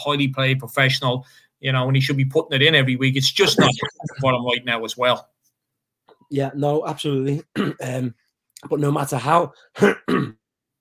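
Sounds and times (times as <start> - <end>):
speech: 0.0 - 5.3, 6.3 - 10.4
person coughing: 7.6 - 8.0, 9.8 - 10.4.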